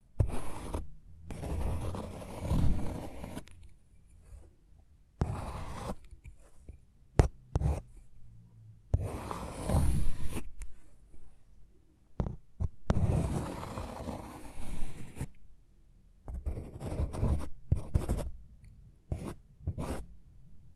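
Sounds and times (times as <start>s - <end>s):
pen and pencil writing on paper, scratching: 0.2s - 3.5s, 5.2s - 7.8s, 8.9s - 10.5s, 12.2s - 15.4s, 16.3s - 18.3s, 19.1s - 20.0s.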